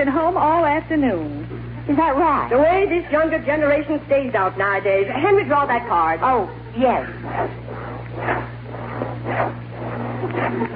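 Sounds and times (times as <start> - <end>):
speech: 0.0 - 7.6, 8.2 - 8.5
low hum: 0.0 - 10.7
hand saw cutting through wood: 7.0 - 10.7.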